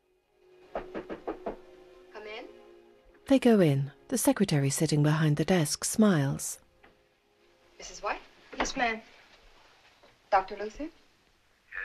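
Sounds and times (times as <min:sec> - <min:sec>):
knocking on a doctor's office door: 0:00.8 - 0:01.7
speech: 0:03.3 - 0:06.6, 0:07.8 - 0:09.1, 0:10.3 - 0:11.0.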